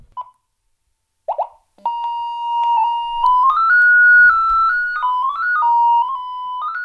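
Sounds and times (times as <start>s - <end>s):
electronic tone from a light detector device locating a window: 1.8s - 6.8s.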